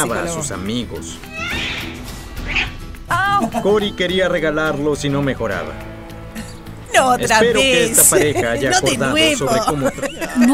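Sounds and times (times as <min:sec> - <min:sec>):
speech: 0:00.0 - 0:01.4, 0:02.5 - 0:05.9, 0:06.9 - 0:10.5
pet cat meowing: 0:01.3 - 0:02.8
laughter: 0:03.1 - 0:04.1, 0:06.4 - 0:10.5.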